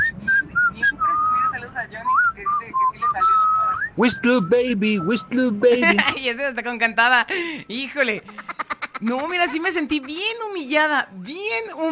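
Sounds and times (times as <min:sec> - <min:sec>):
person whistling a quick wavering tune: 0:00.0 - 0:05.4
faint murmur: 0:00.0 - 0:11.8
speech: 0:04.0 - 0:11.8.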